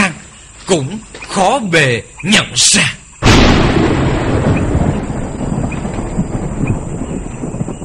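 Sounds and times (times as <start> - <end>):
speech: 0.7 - 3.0
rolling thunder followed by a loud crash: 3.2 - 7.8.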